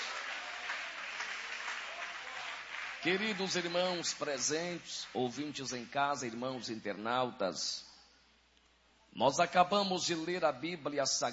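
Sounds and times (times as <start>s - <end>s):
audience at a church service applauding: 0.0s - 5.3s
speech: 3.0s - 7.9s, 9.2s - 11.3s.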